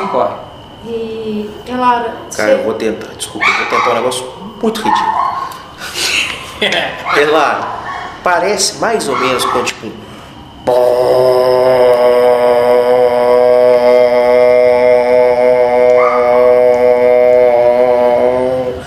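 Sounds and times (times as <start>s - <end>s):
speech: 0.1s - 10.1s, 10.7s - 11.5s
laughter: 5.8s - 7.4s
voice imitating a conch horn call: 10.7s - 18.8s.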